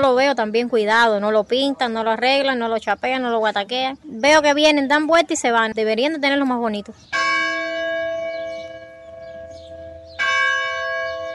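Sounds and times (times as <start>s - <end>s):
speech: 0.1s - 7.4s
large bell tolling: 7.1s - 11.3s.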